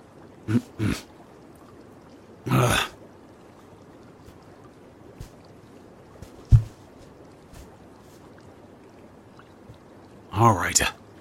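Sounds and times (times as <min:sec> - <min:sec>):
soft drips: 0:00.0 - 0:11.1
speech: 0:00.5 - 0:01.2, 0:02.4 - 0:02.9, 0:10.6 - 0:11.0
water splashing as person climbs into hot bath: 0:06.2 - 0:08.2.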